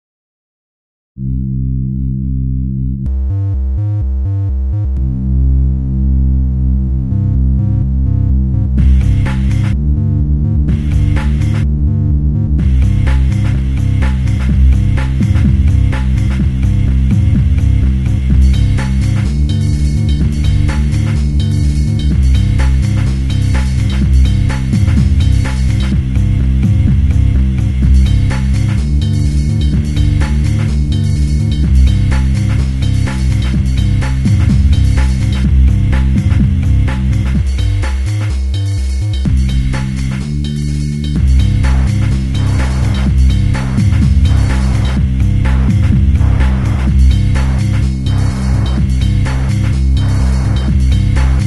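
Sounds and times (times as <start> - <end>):
bass: 1.2 - 51.4
beat: 3.0 - 51.4.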